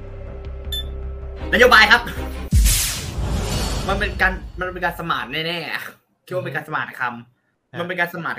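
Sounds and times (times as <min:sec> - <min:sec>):
quiz game timer ticking during a countdown: 0:00.7 - 0:00.9
speech: 0:01.5 - 0:02.4, 0:03.9 - 0:08.3.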